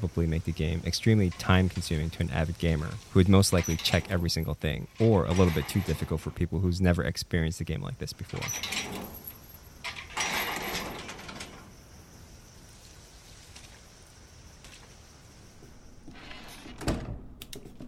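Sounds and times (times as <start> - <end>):
speech: 0.0 - 9.1
video game door sliding shut with a grinding mechanical rumble: 1.1 - 6.4, 8.2 - 11.8, 16.0 - 17.4.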